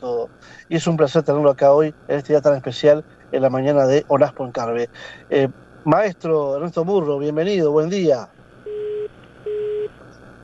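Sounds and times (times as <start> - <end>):
speech: 0.7 - 8.4
busy tone beeps after a dropped phone call: 8.7 - 9.9.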